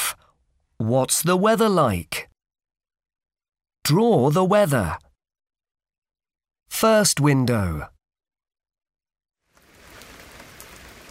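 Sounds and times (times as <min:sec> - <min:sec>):
speech: 0:00.8 - 0:02.2, 0:03.9 - 0:05.0, 0:06.7 - 0:07.9
steady rain of drops hitting a surface: 0:09.4 - 0:11.0.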